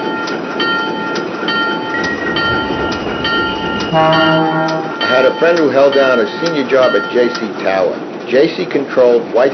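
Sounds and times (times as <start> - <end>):
train rumbling toward a station: 0.0 - 9.5
train wheels clacking on the track: 0.0 - 9.5
thin metallic whining tones of a train: 0.9 - 7.3
speech: 3.9 - 9.5.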